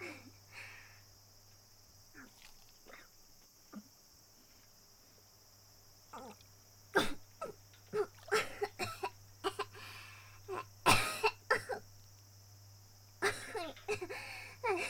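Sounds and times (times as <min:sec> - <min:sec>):
person coughing after choking: 0:07.0 - 0:09.8, 0:10.9 - 0:11.8, 0:13.2 - 0:14.8.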